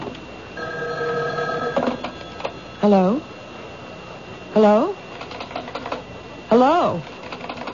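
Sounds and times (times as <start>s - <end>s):
telephone bell trill ringing: 0.6s - 2.7s
speech: 2.8s - 3.3s, 4.6s - 5.0s, 6.5s - 7.2s.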